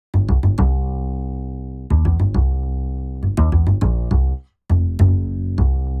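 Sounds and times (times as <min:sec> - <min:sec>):
walking upright bass: 0:00.1 - 0:05.9.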